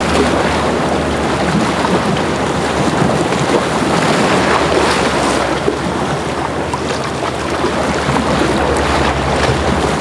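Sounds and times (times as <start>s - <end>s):
intense waves: 0.0s - 9.9s.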